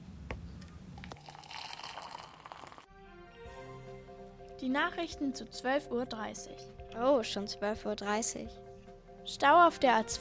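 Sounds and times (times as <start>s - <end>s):
water pouring into a glass: 1.0s - 2.9s
speech: 4.6s - 8.6s, 9.3s - 10.2s.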